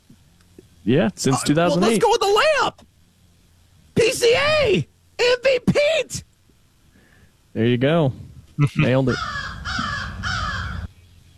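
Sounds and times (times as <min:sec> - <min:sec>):
speech: 0:00.8 - 0:02.9, 0:04.2 - 0:06.3, 0:07.6 - 0:09.4
crow giving loud harsh raspy caws: 0:09.1 - 0:10.9.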